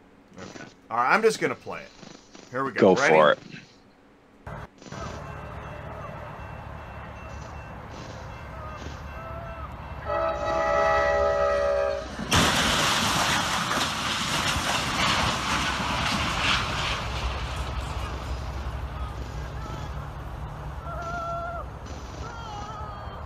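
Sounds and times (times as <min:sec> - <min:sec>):
speech: 0:00.4 - 0:03.6
train rushing along railroad tracks: 0:04.5 - 0:23.2
train horn blaring: 0:05.2 - 0:12.2.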